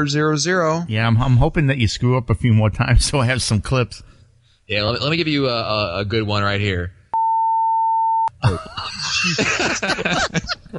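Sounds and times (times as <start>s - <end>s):
speech: 0.0s - 7.0s, 8.4s - 10.7s
loud steady censor beep: 7.2s - 8.3s
laughter: 8.4s - 10.7s.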